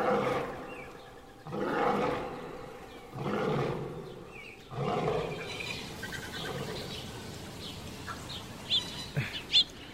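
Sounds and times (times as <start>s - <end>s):
lion roaring: 0.0s - 0.7s, 1.4s - 5.5s
bird chirps and calls: 0.0s - 9.9s.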